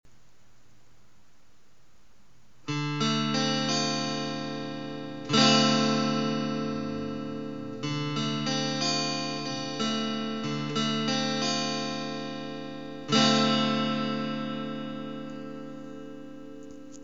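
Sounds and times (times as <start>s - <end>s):
guitar in D minor: 2.4s - 17.0s.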